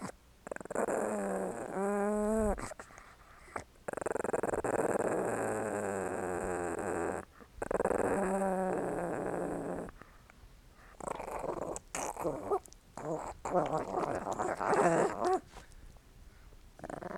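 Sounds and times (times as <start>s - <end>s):
small dog growling: 0.0s - 2.9s, 3.5s - 10.1s, 10.9s - 15.8s, 16.8s - 17.1s
small dog licking and smacking: 12.7s - 15.9s
speech: 13.5s - 14.0s.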